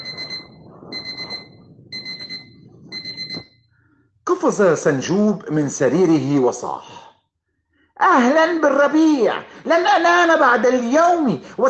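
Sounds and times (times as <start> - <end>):
alarm clock ringing with a bright metallic buzz: 0.0 - 3.6
speech: 4.4 - 7.0, 8.0 - 11.6.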